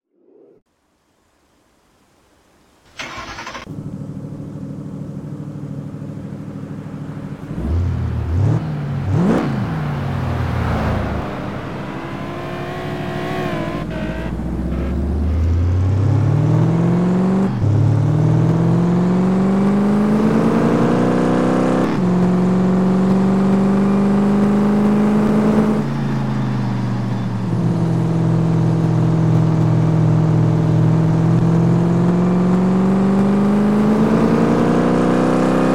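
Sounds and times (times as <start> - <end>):
Ford Mustang GT engine: 2.9 - 35.7.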